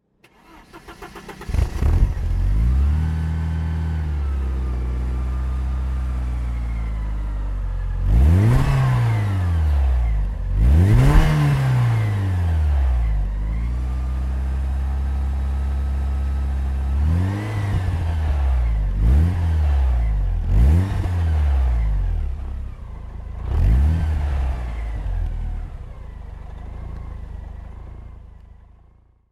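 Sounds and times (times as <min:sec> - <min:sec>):
1989 Porsche 944 S2 Cabrio: 0:00.0 - 0:29.3.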